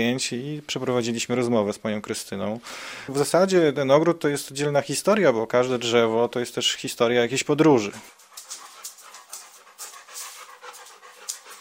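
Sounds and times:
speech: 0.0 - 8.2
French pointer dog panting: 8.0 - 11.5.

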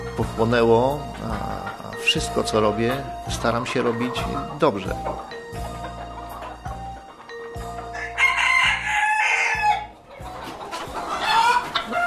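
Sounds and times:
Hamburg chickens clucking: 0.0 - 12.0
speech: 0.2 - 5.4
rooster crowing: 7.9 - 9.9, 11.1 - 12.0.

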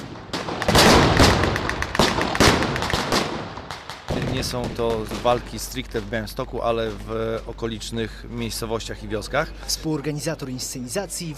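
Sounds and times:
PPSh submachine gun firing at a battle reenactment: 0.0 - 6.2
speech: 4.4 - 11.3.

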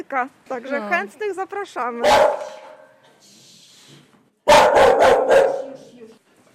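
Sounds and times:
speech: 0.0 - 2.7
mixed-breed dogs barking: 2.0 - 3.0, 4.5 - 5.9.

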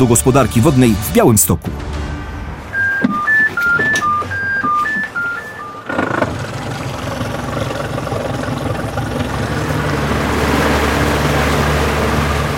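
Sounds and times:
speech: 0.0 - 2.0
boat engine rumbling on the Netta river in Augustów: 1.7 - 12.5
melodic jingle of bright tones: 2.8 - 5.8
rushing water on the Netta river in Augustów: 6.2 - 12.5.

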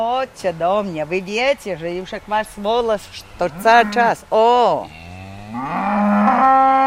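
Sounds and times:
speech: 0.0 - 6.6
cow mooing on a farm: 3.4 - 4.2, 4.8 - 6.8.

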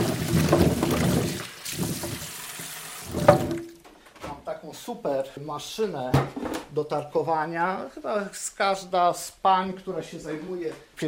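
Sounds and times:
water pouring and sloshing in a pot while rinsing and draining potatoes: 0.0 - 3.8
speech: 4.9 - 11.0.

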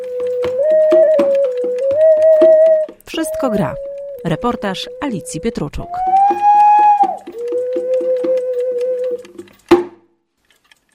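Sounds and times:
sustained humming tone: 0.0 - 9.3
clock ticking: 0.8 - 9.7
speech: 3.4 - 6.4.

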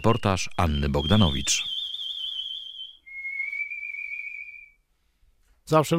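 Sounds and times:
speech: 0.0 - 1.8, 5.7 - 5.9
person whistling two long steady notes: 0.0 - 4.8.

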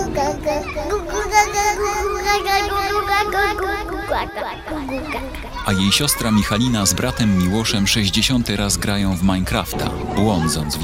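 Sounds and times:
children playing and chattering on the street: 0.0 - 10.8
toddler calling out: 0.6 - 7.8
speech: 2.6 - 10.8.

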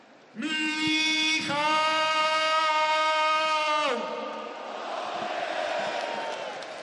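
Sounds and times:
long drawn-out amplified voice: 0.4 - 4.8
stadium crowd cheering and applauding: 4.8 - 6.8.

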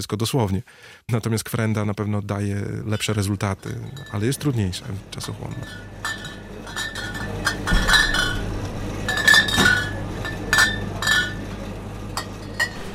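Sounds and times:
speech: 0.0 - 6.2
steady low mechanical hum: 1.8 - 12.9
glass bottles clinking on a bottling line: 2.9 - 12.9.

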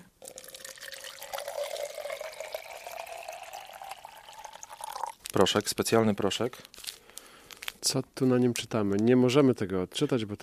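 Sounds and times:
water pouring into a small vase made from a cut bottle: 0.2 - 5.4
speech: 5.4 - 6.8, 7.9 - 10.4.

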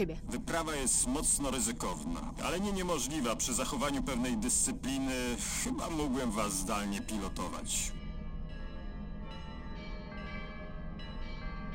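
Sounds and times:
speech: 0.0 - 8.0
old monastery church bells ringing: 5.8 - 11.7.

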